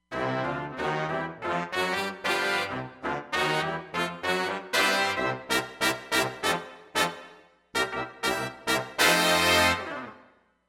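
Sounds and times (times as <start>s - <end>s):
stereo brass: 0.0s - 10.3s.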